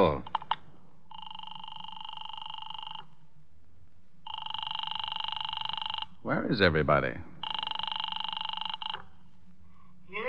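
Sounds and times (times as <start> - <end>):
speech: 0.0 - 0.3, 6.2 - 7.3
telephone ringing in buzzy trilling bursts: 1.1 - 3.1, 4.3 - 6.1, 7.4 - 9.1.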